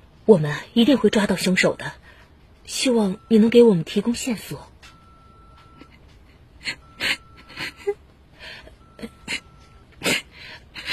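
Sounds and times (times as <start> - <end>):
speech: 0.3 - 2.0, 2.7 - 4.7
woman sobbing and sniffling: 5.7 - 10.9
woman crying: 5.8 - 10.9.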